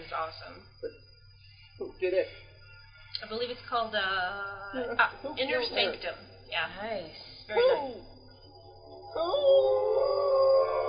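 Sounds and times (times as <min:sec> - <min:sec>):
faint low hum: 0:00.0 - 0:10.8
speech: 0:00.1 - 0:01.0, 0:01.8 - 0:02.5, 0:03.2 - 0:08.1, 0:09.2 - 0:10.8
male actor imitating an animal howl: 0:09.2 - 0:10.8.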